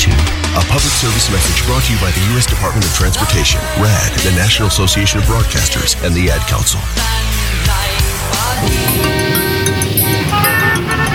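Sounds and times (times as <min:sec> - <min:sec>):
speech: 0:00.8 - 0:09.6
car horns honking: 0:08.6 - 0:11.1.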